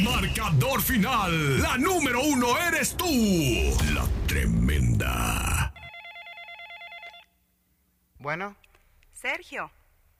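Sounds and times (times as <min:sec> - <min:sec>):
speech: 0:00.0 - 0:05.7, 0:08.2 - 0:08.6, 0:09.2 - 0:09.8
telephone ringing with electronic trill tones: 0:05.8 - 0:07.3.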